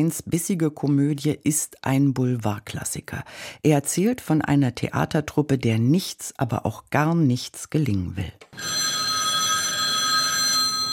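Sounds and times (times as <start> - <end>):
speech: 0.0 - 9.0
old-fashioned telephone bell ringing: 8.6 - 10.9.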